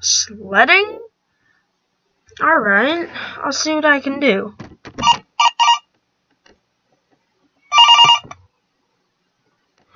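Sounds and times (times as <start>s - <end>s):
speech: 0.0s - 1.1s, 2.4s - 5.2s
telephone ringing: 5.0s - 5.9s, 7.7s - 8.4s.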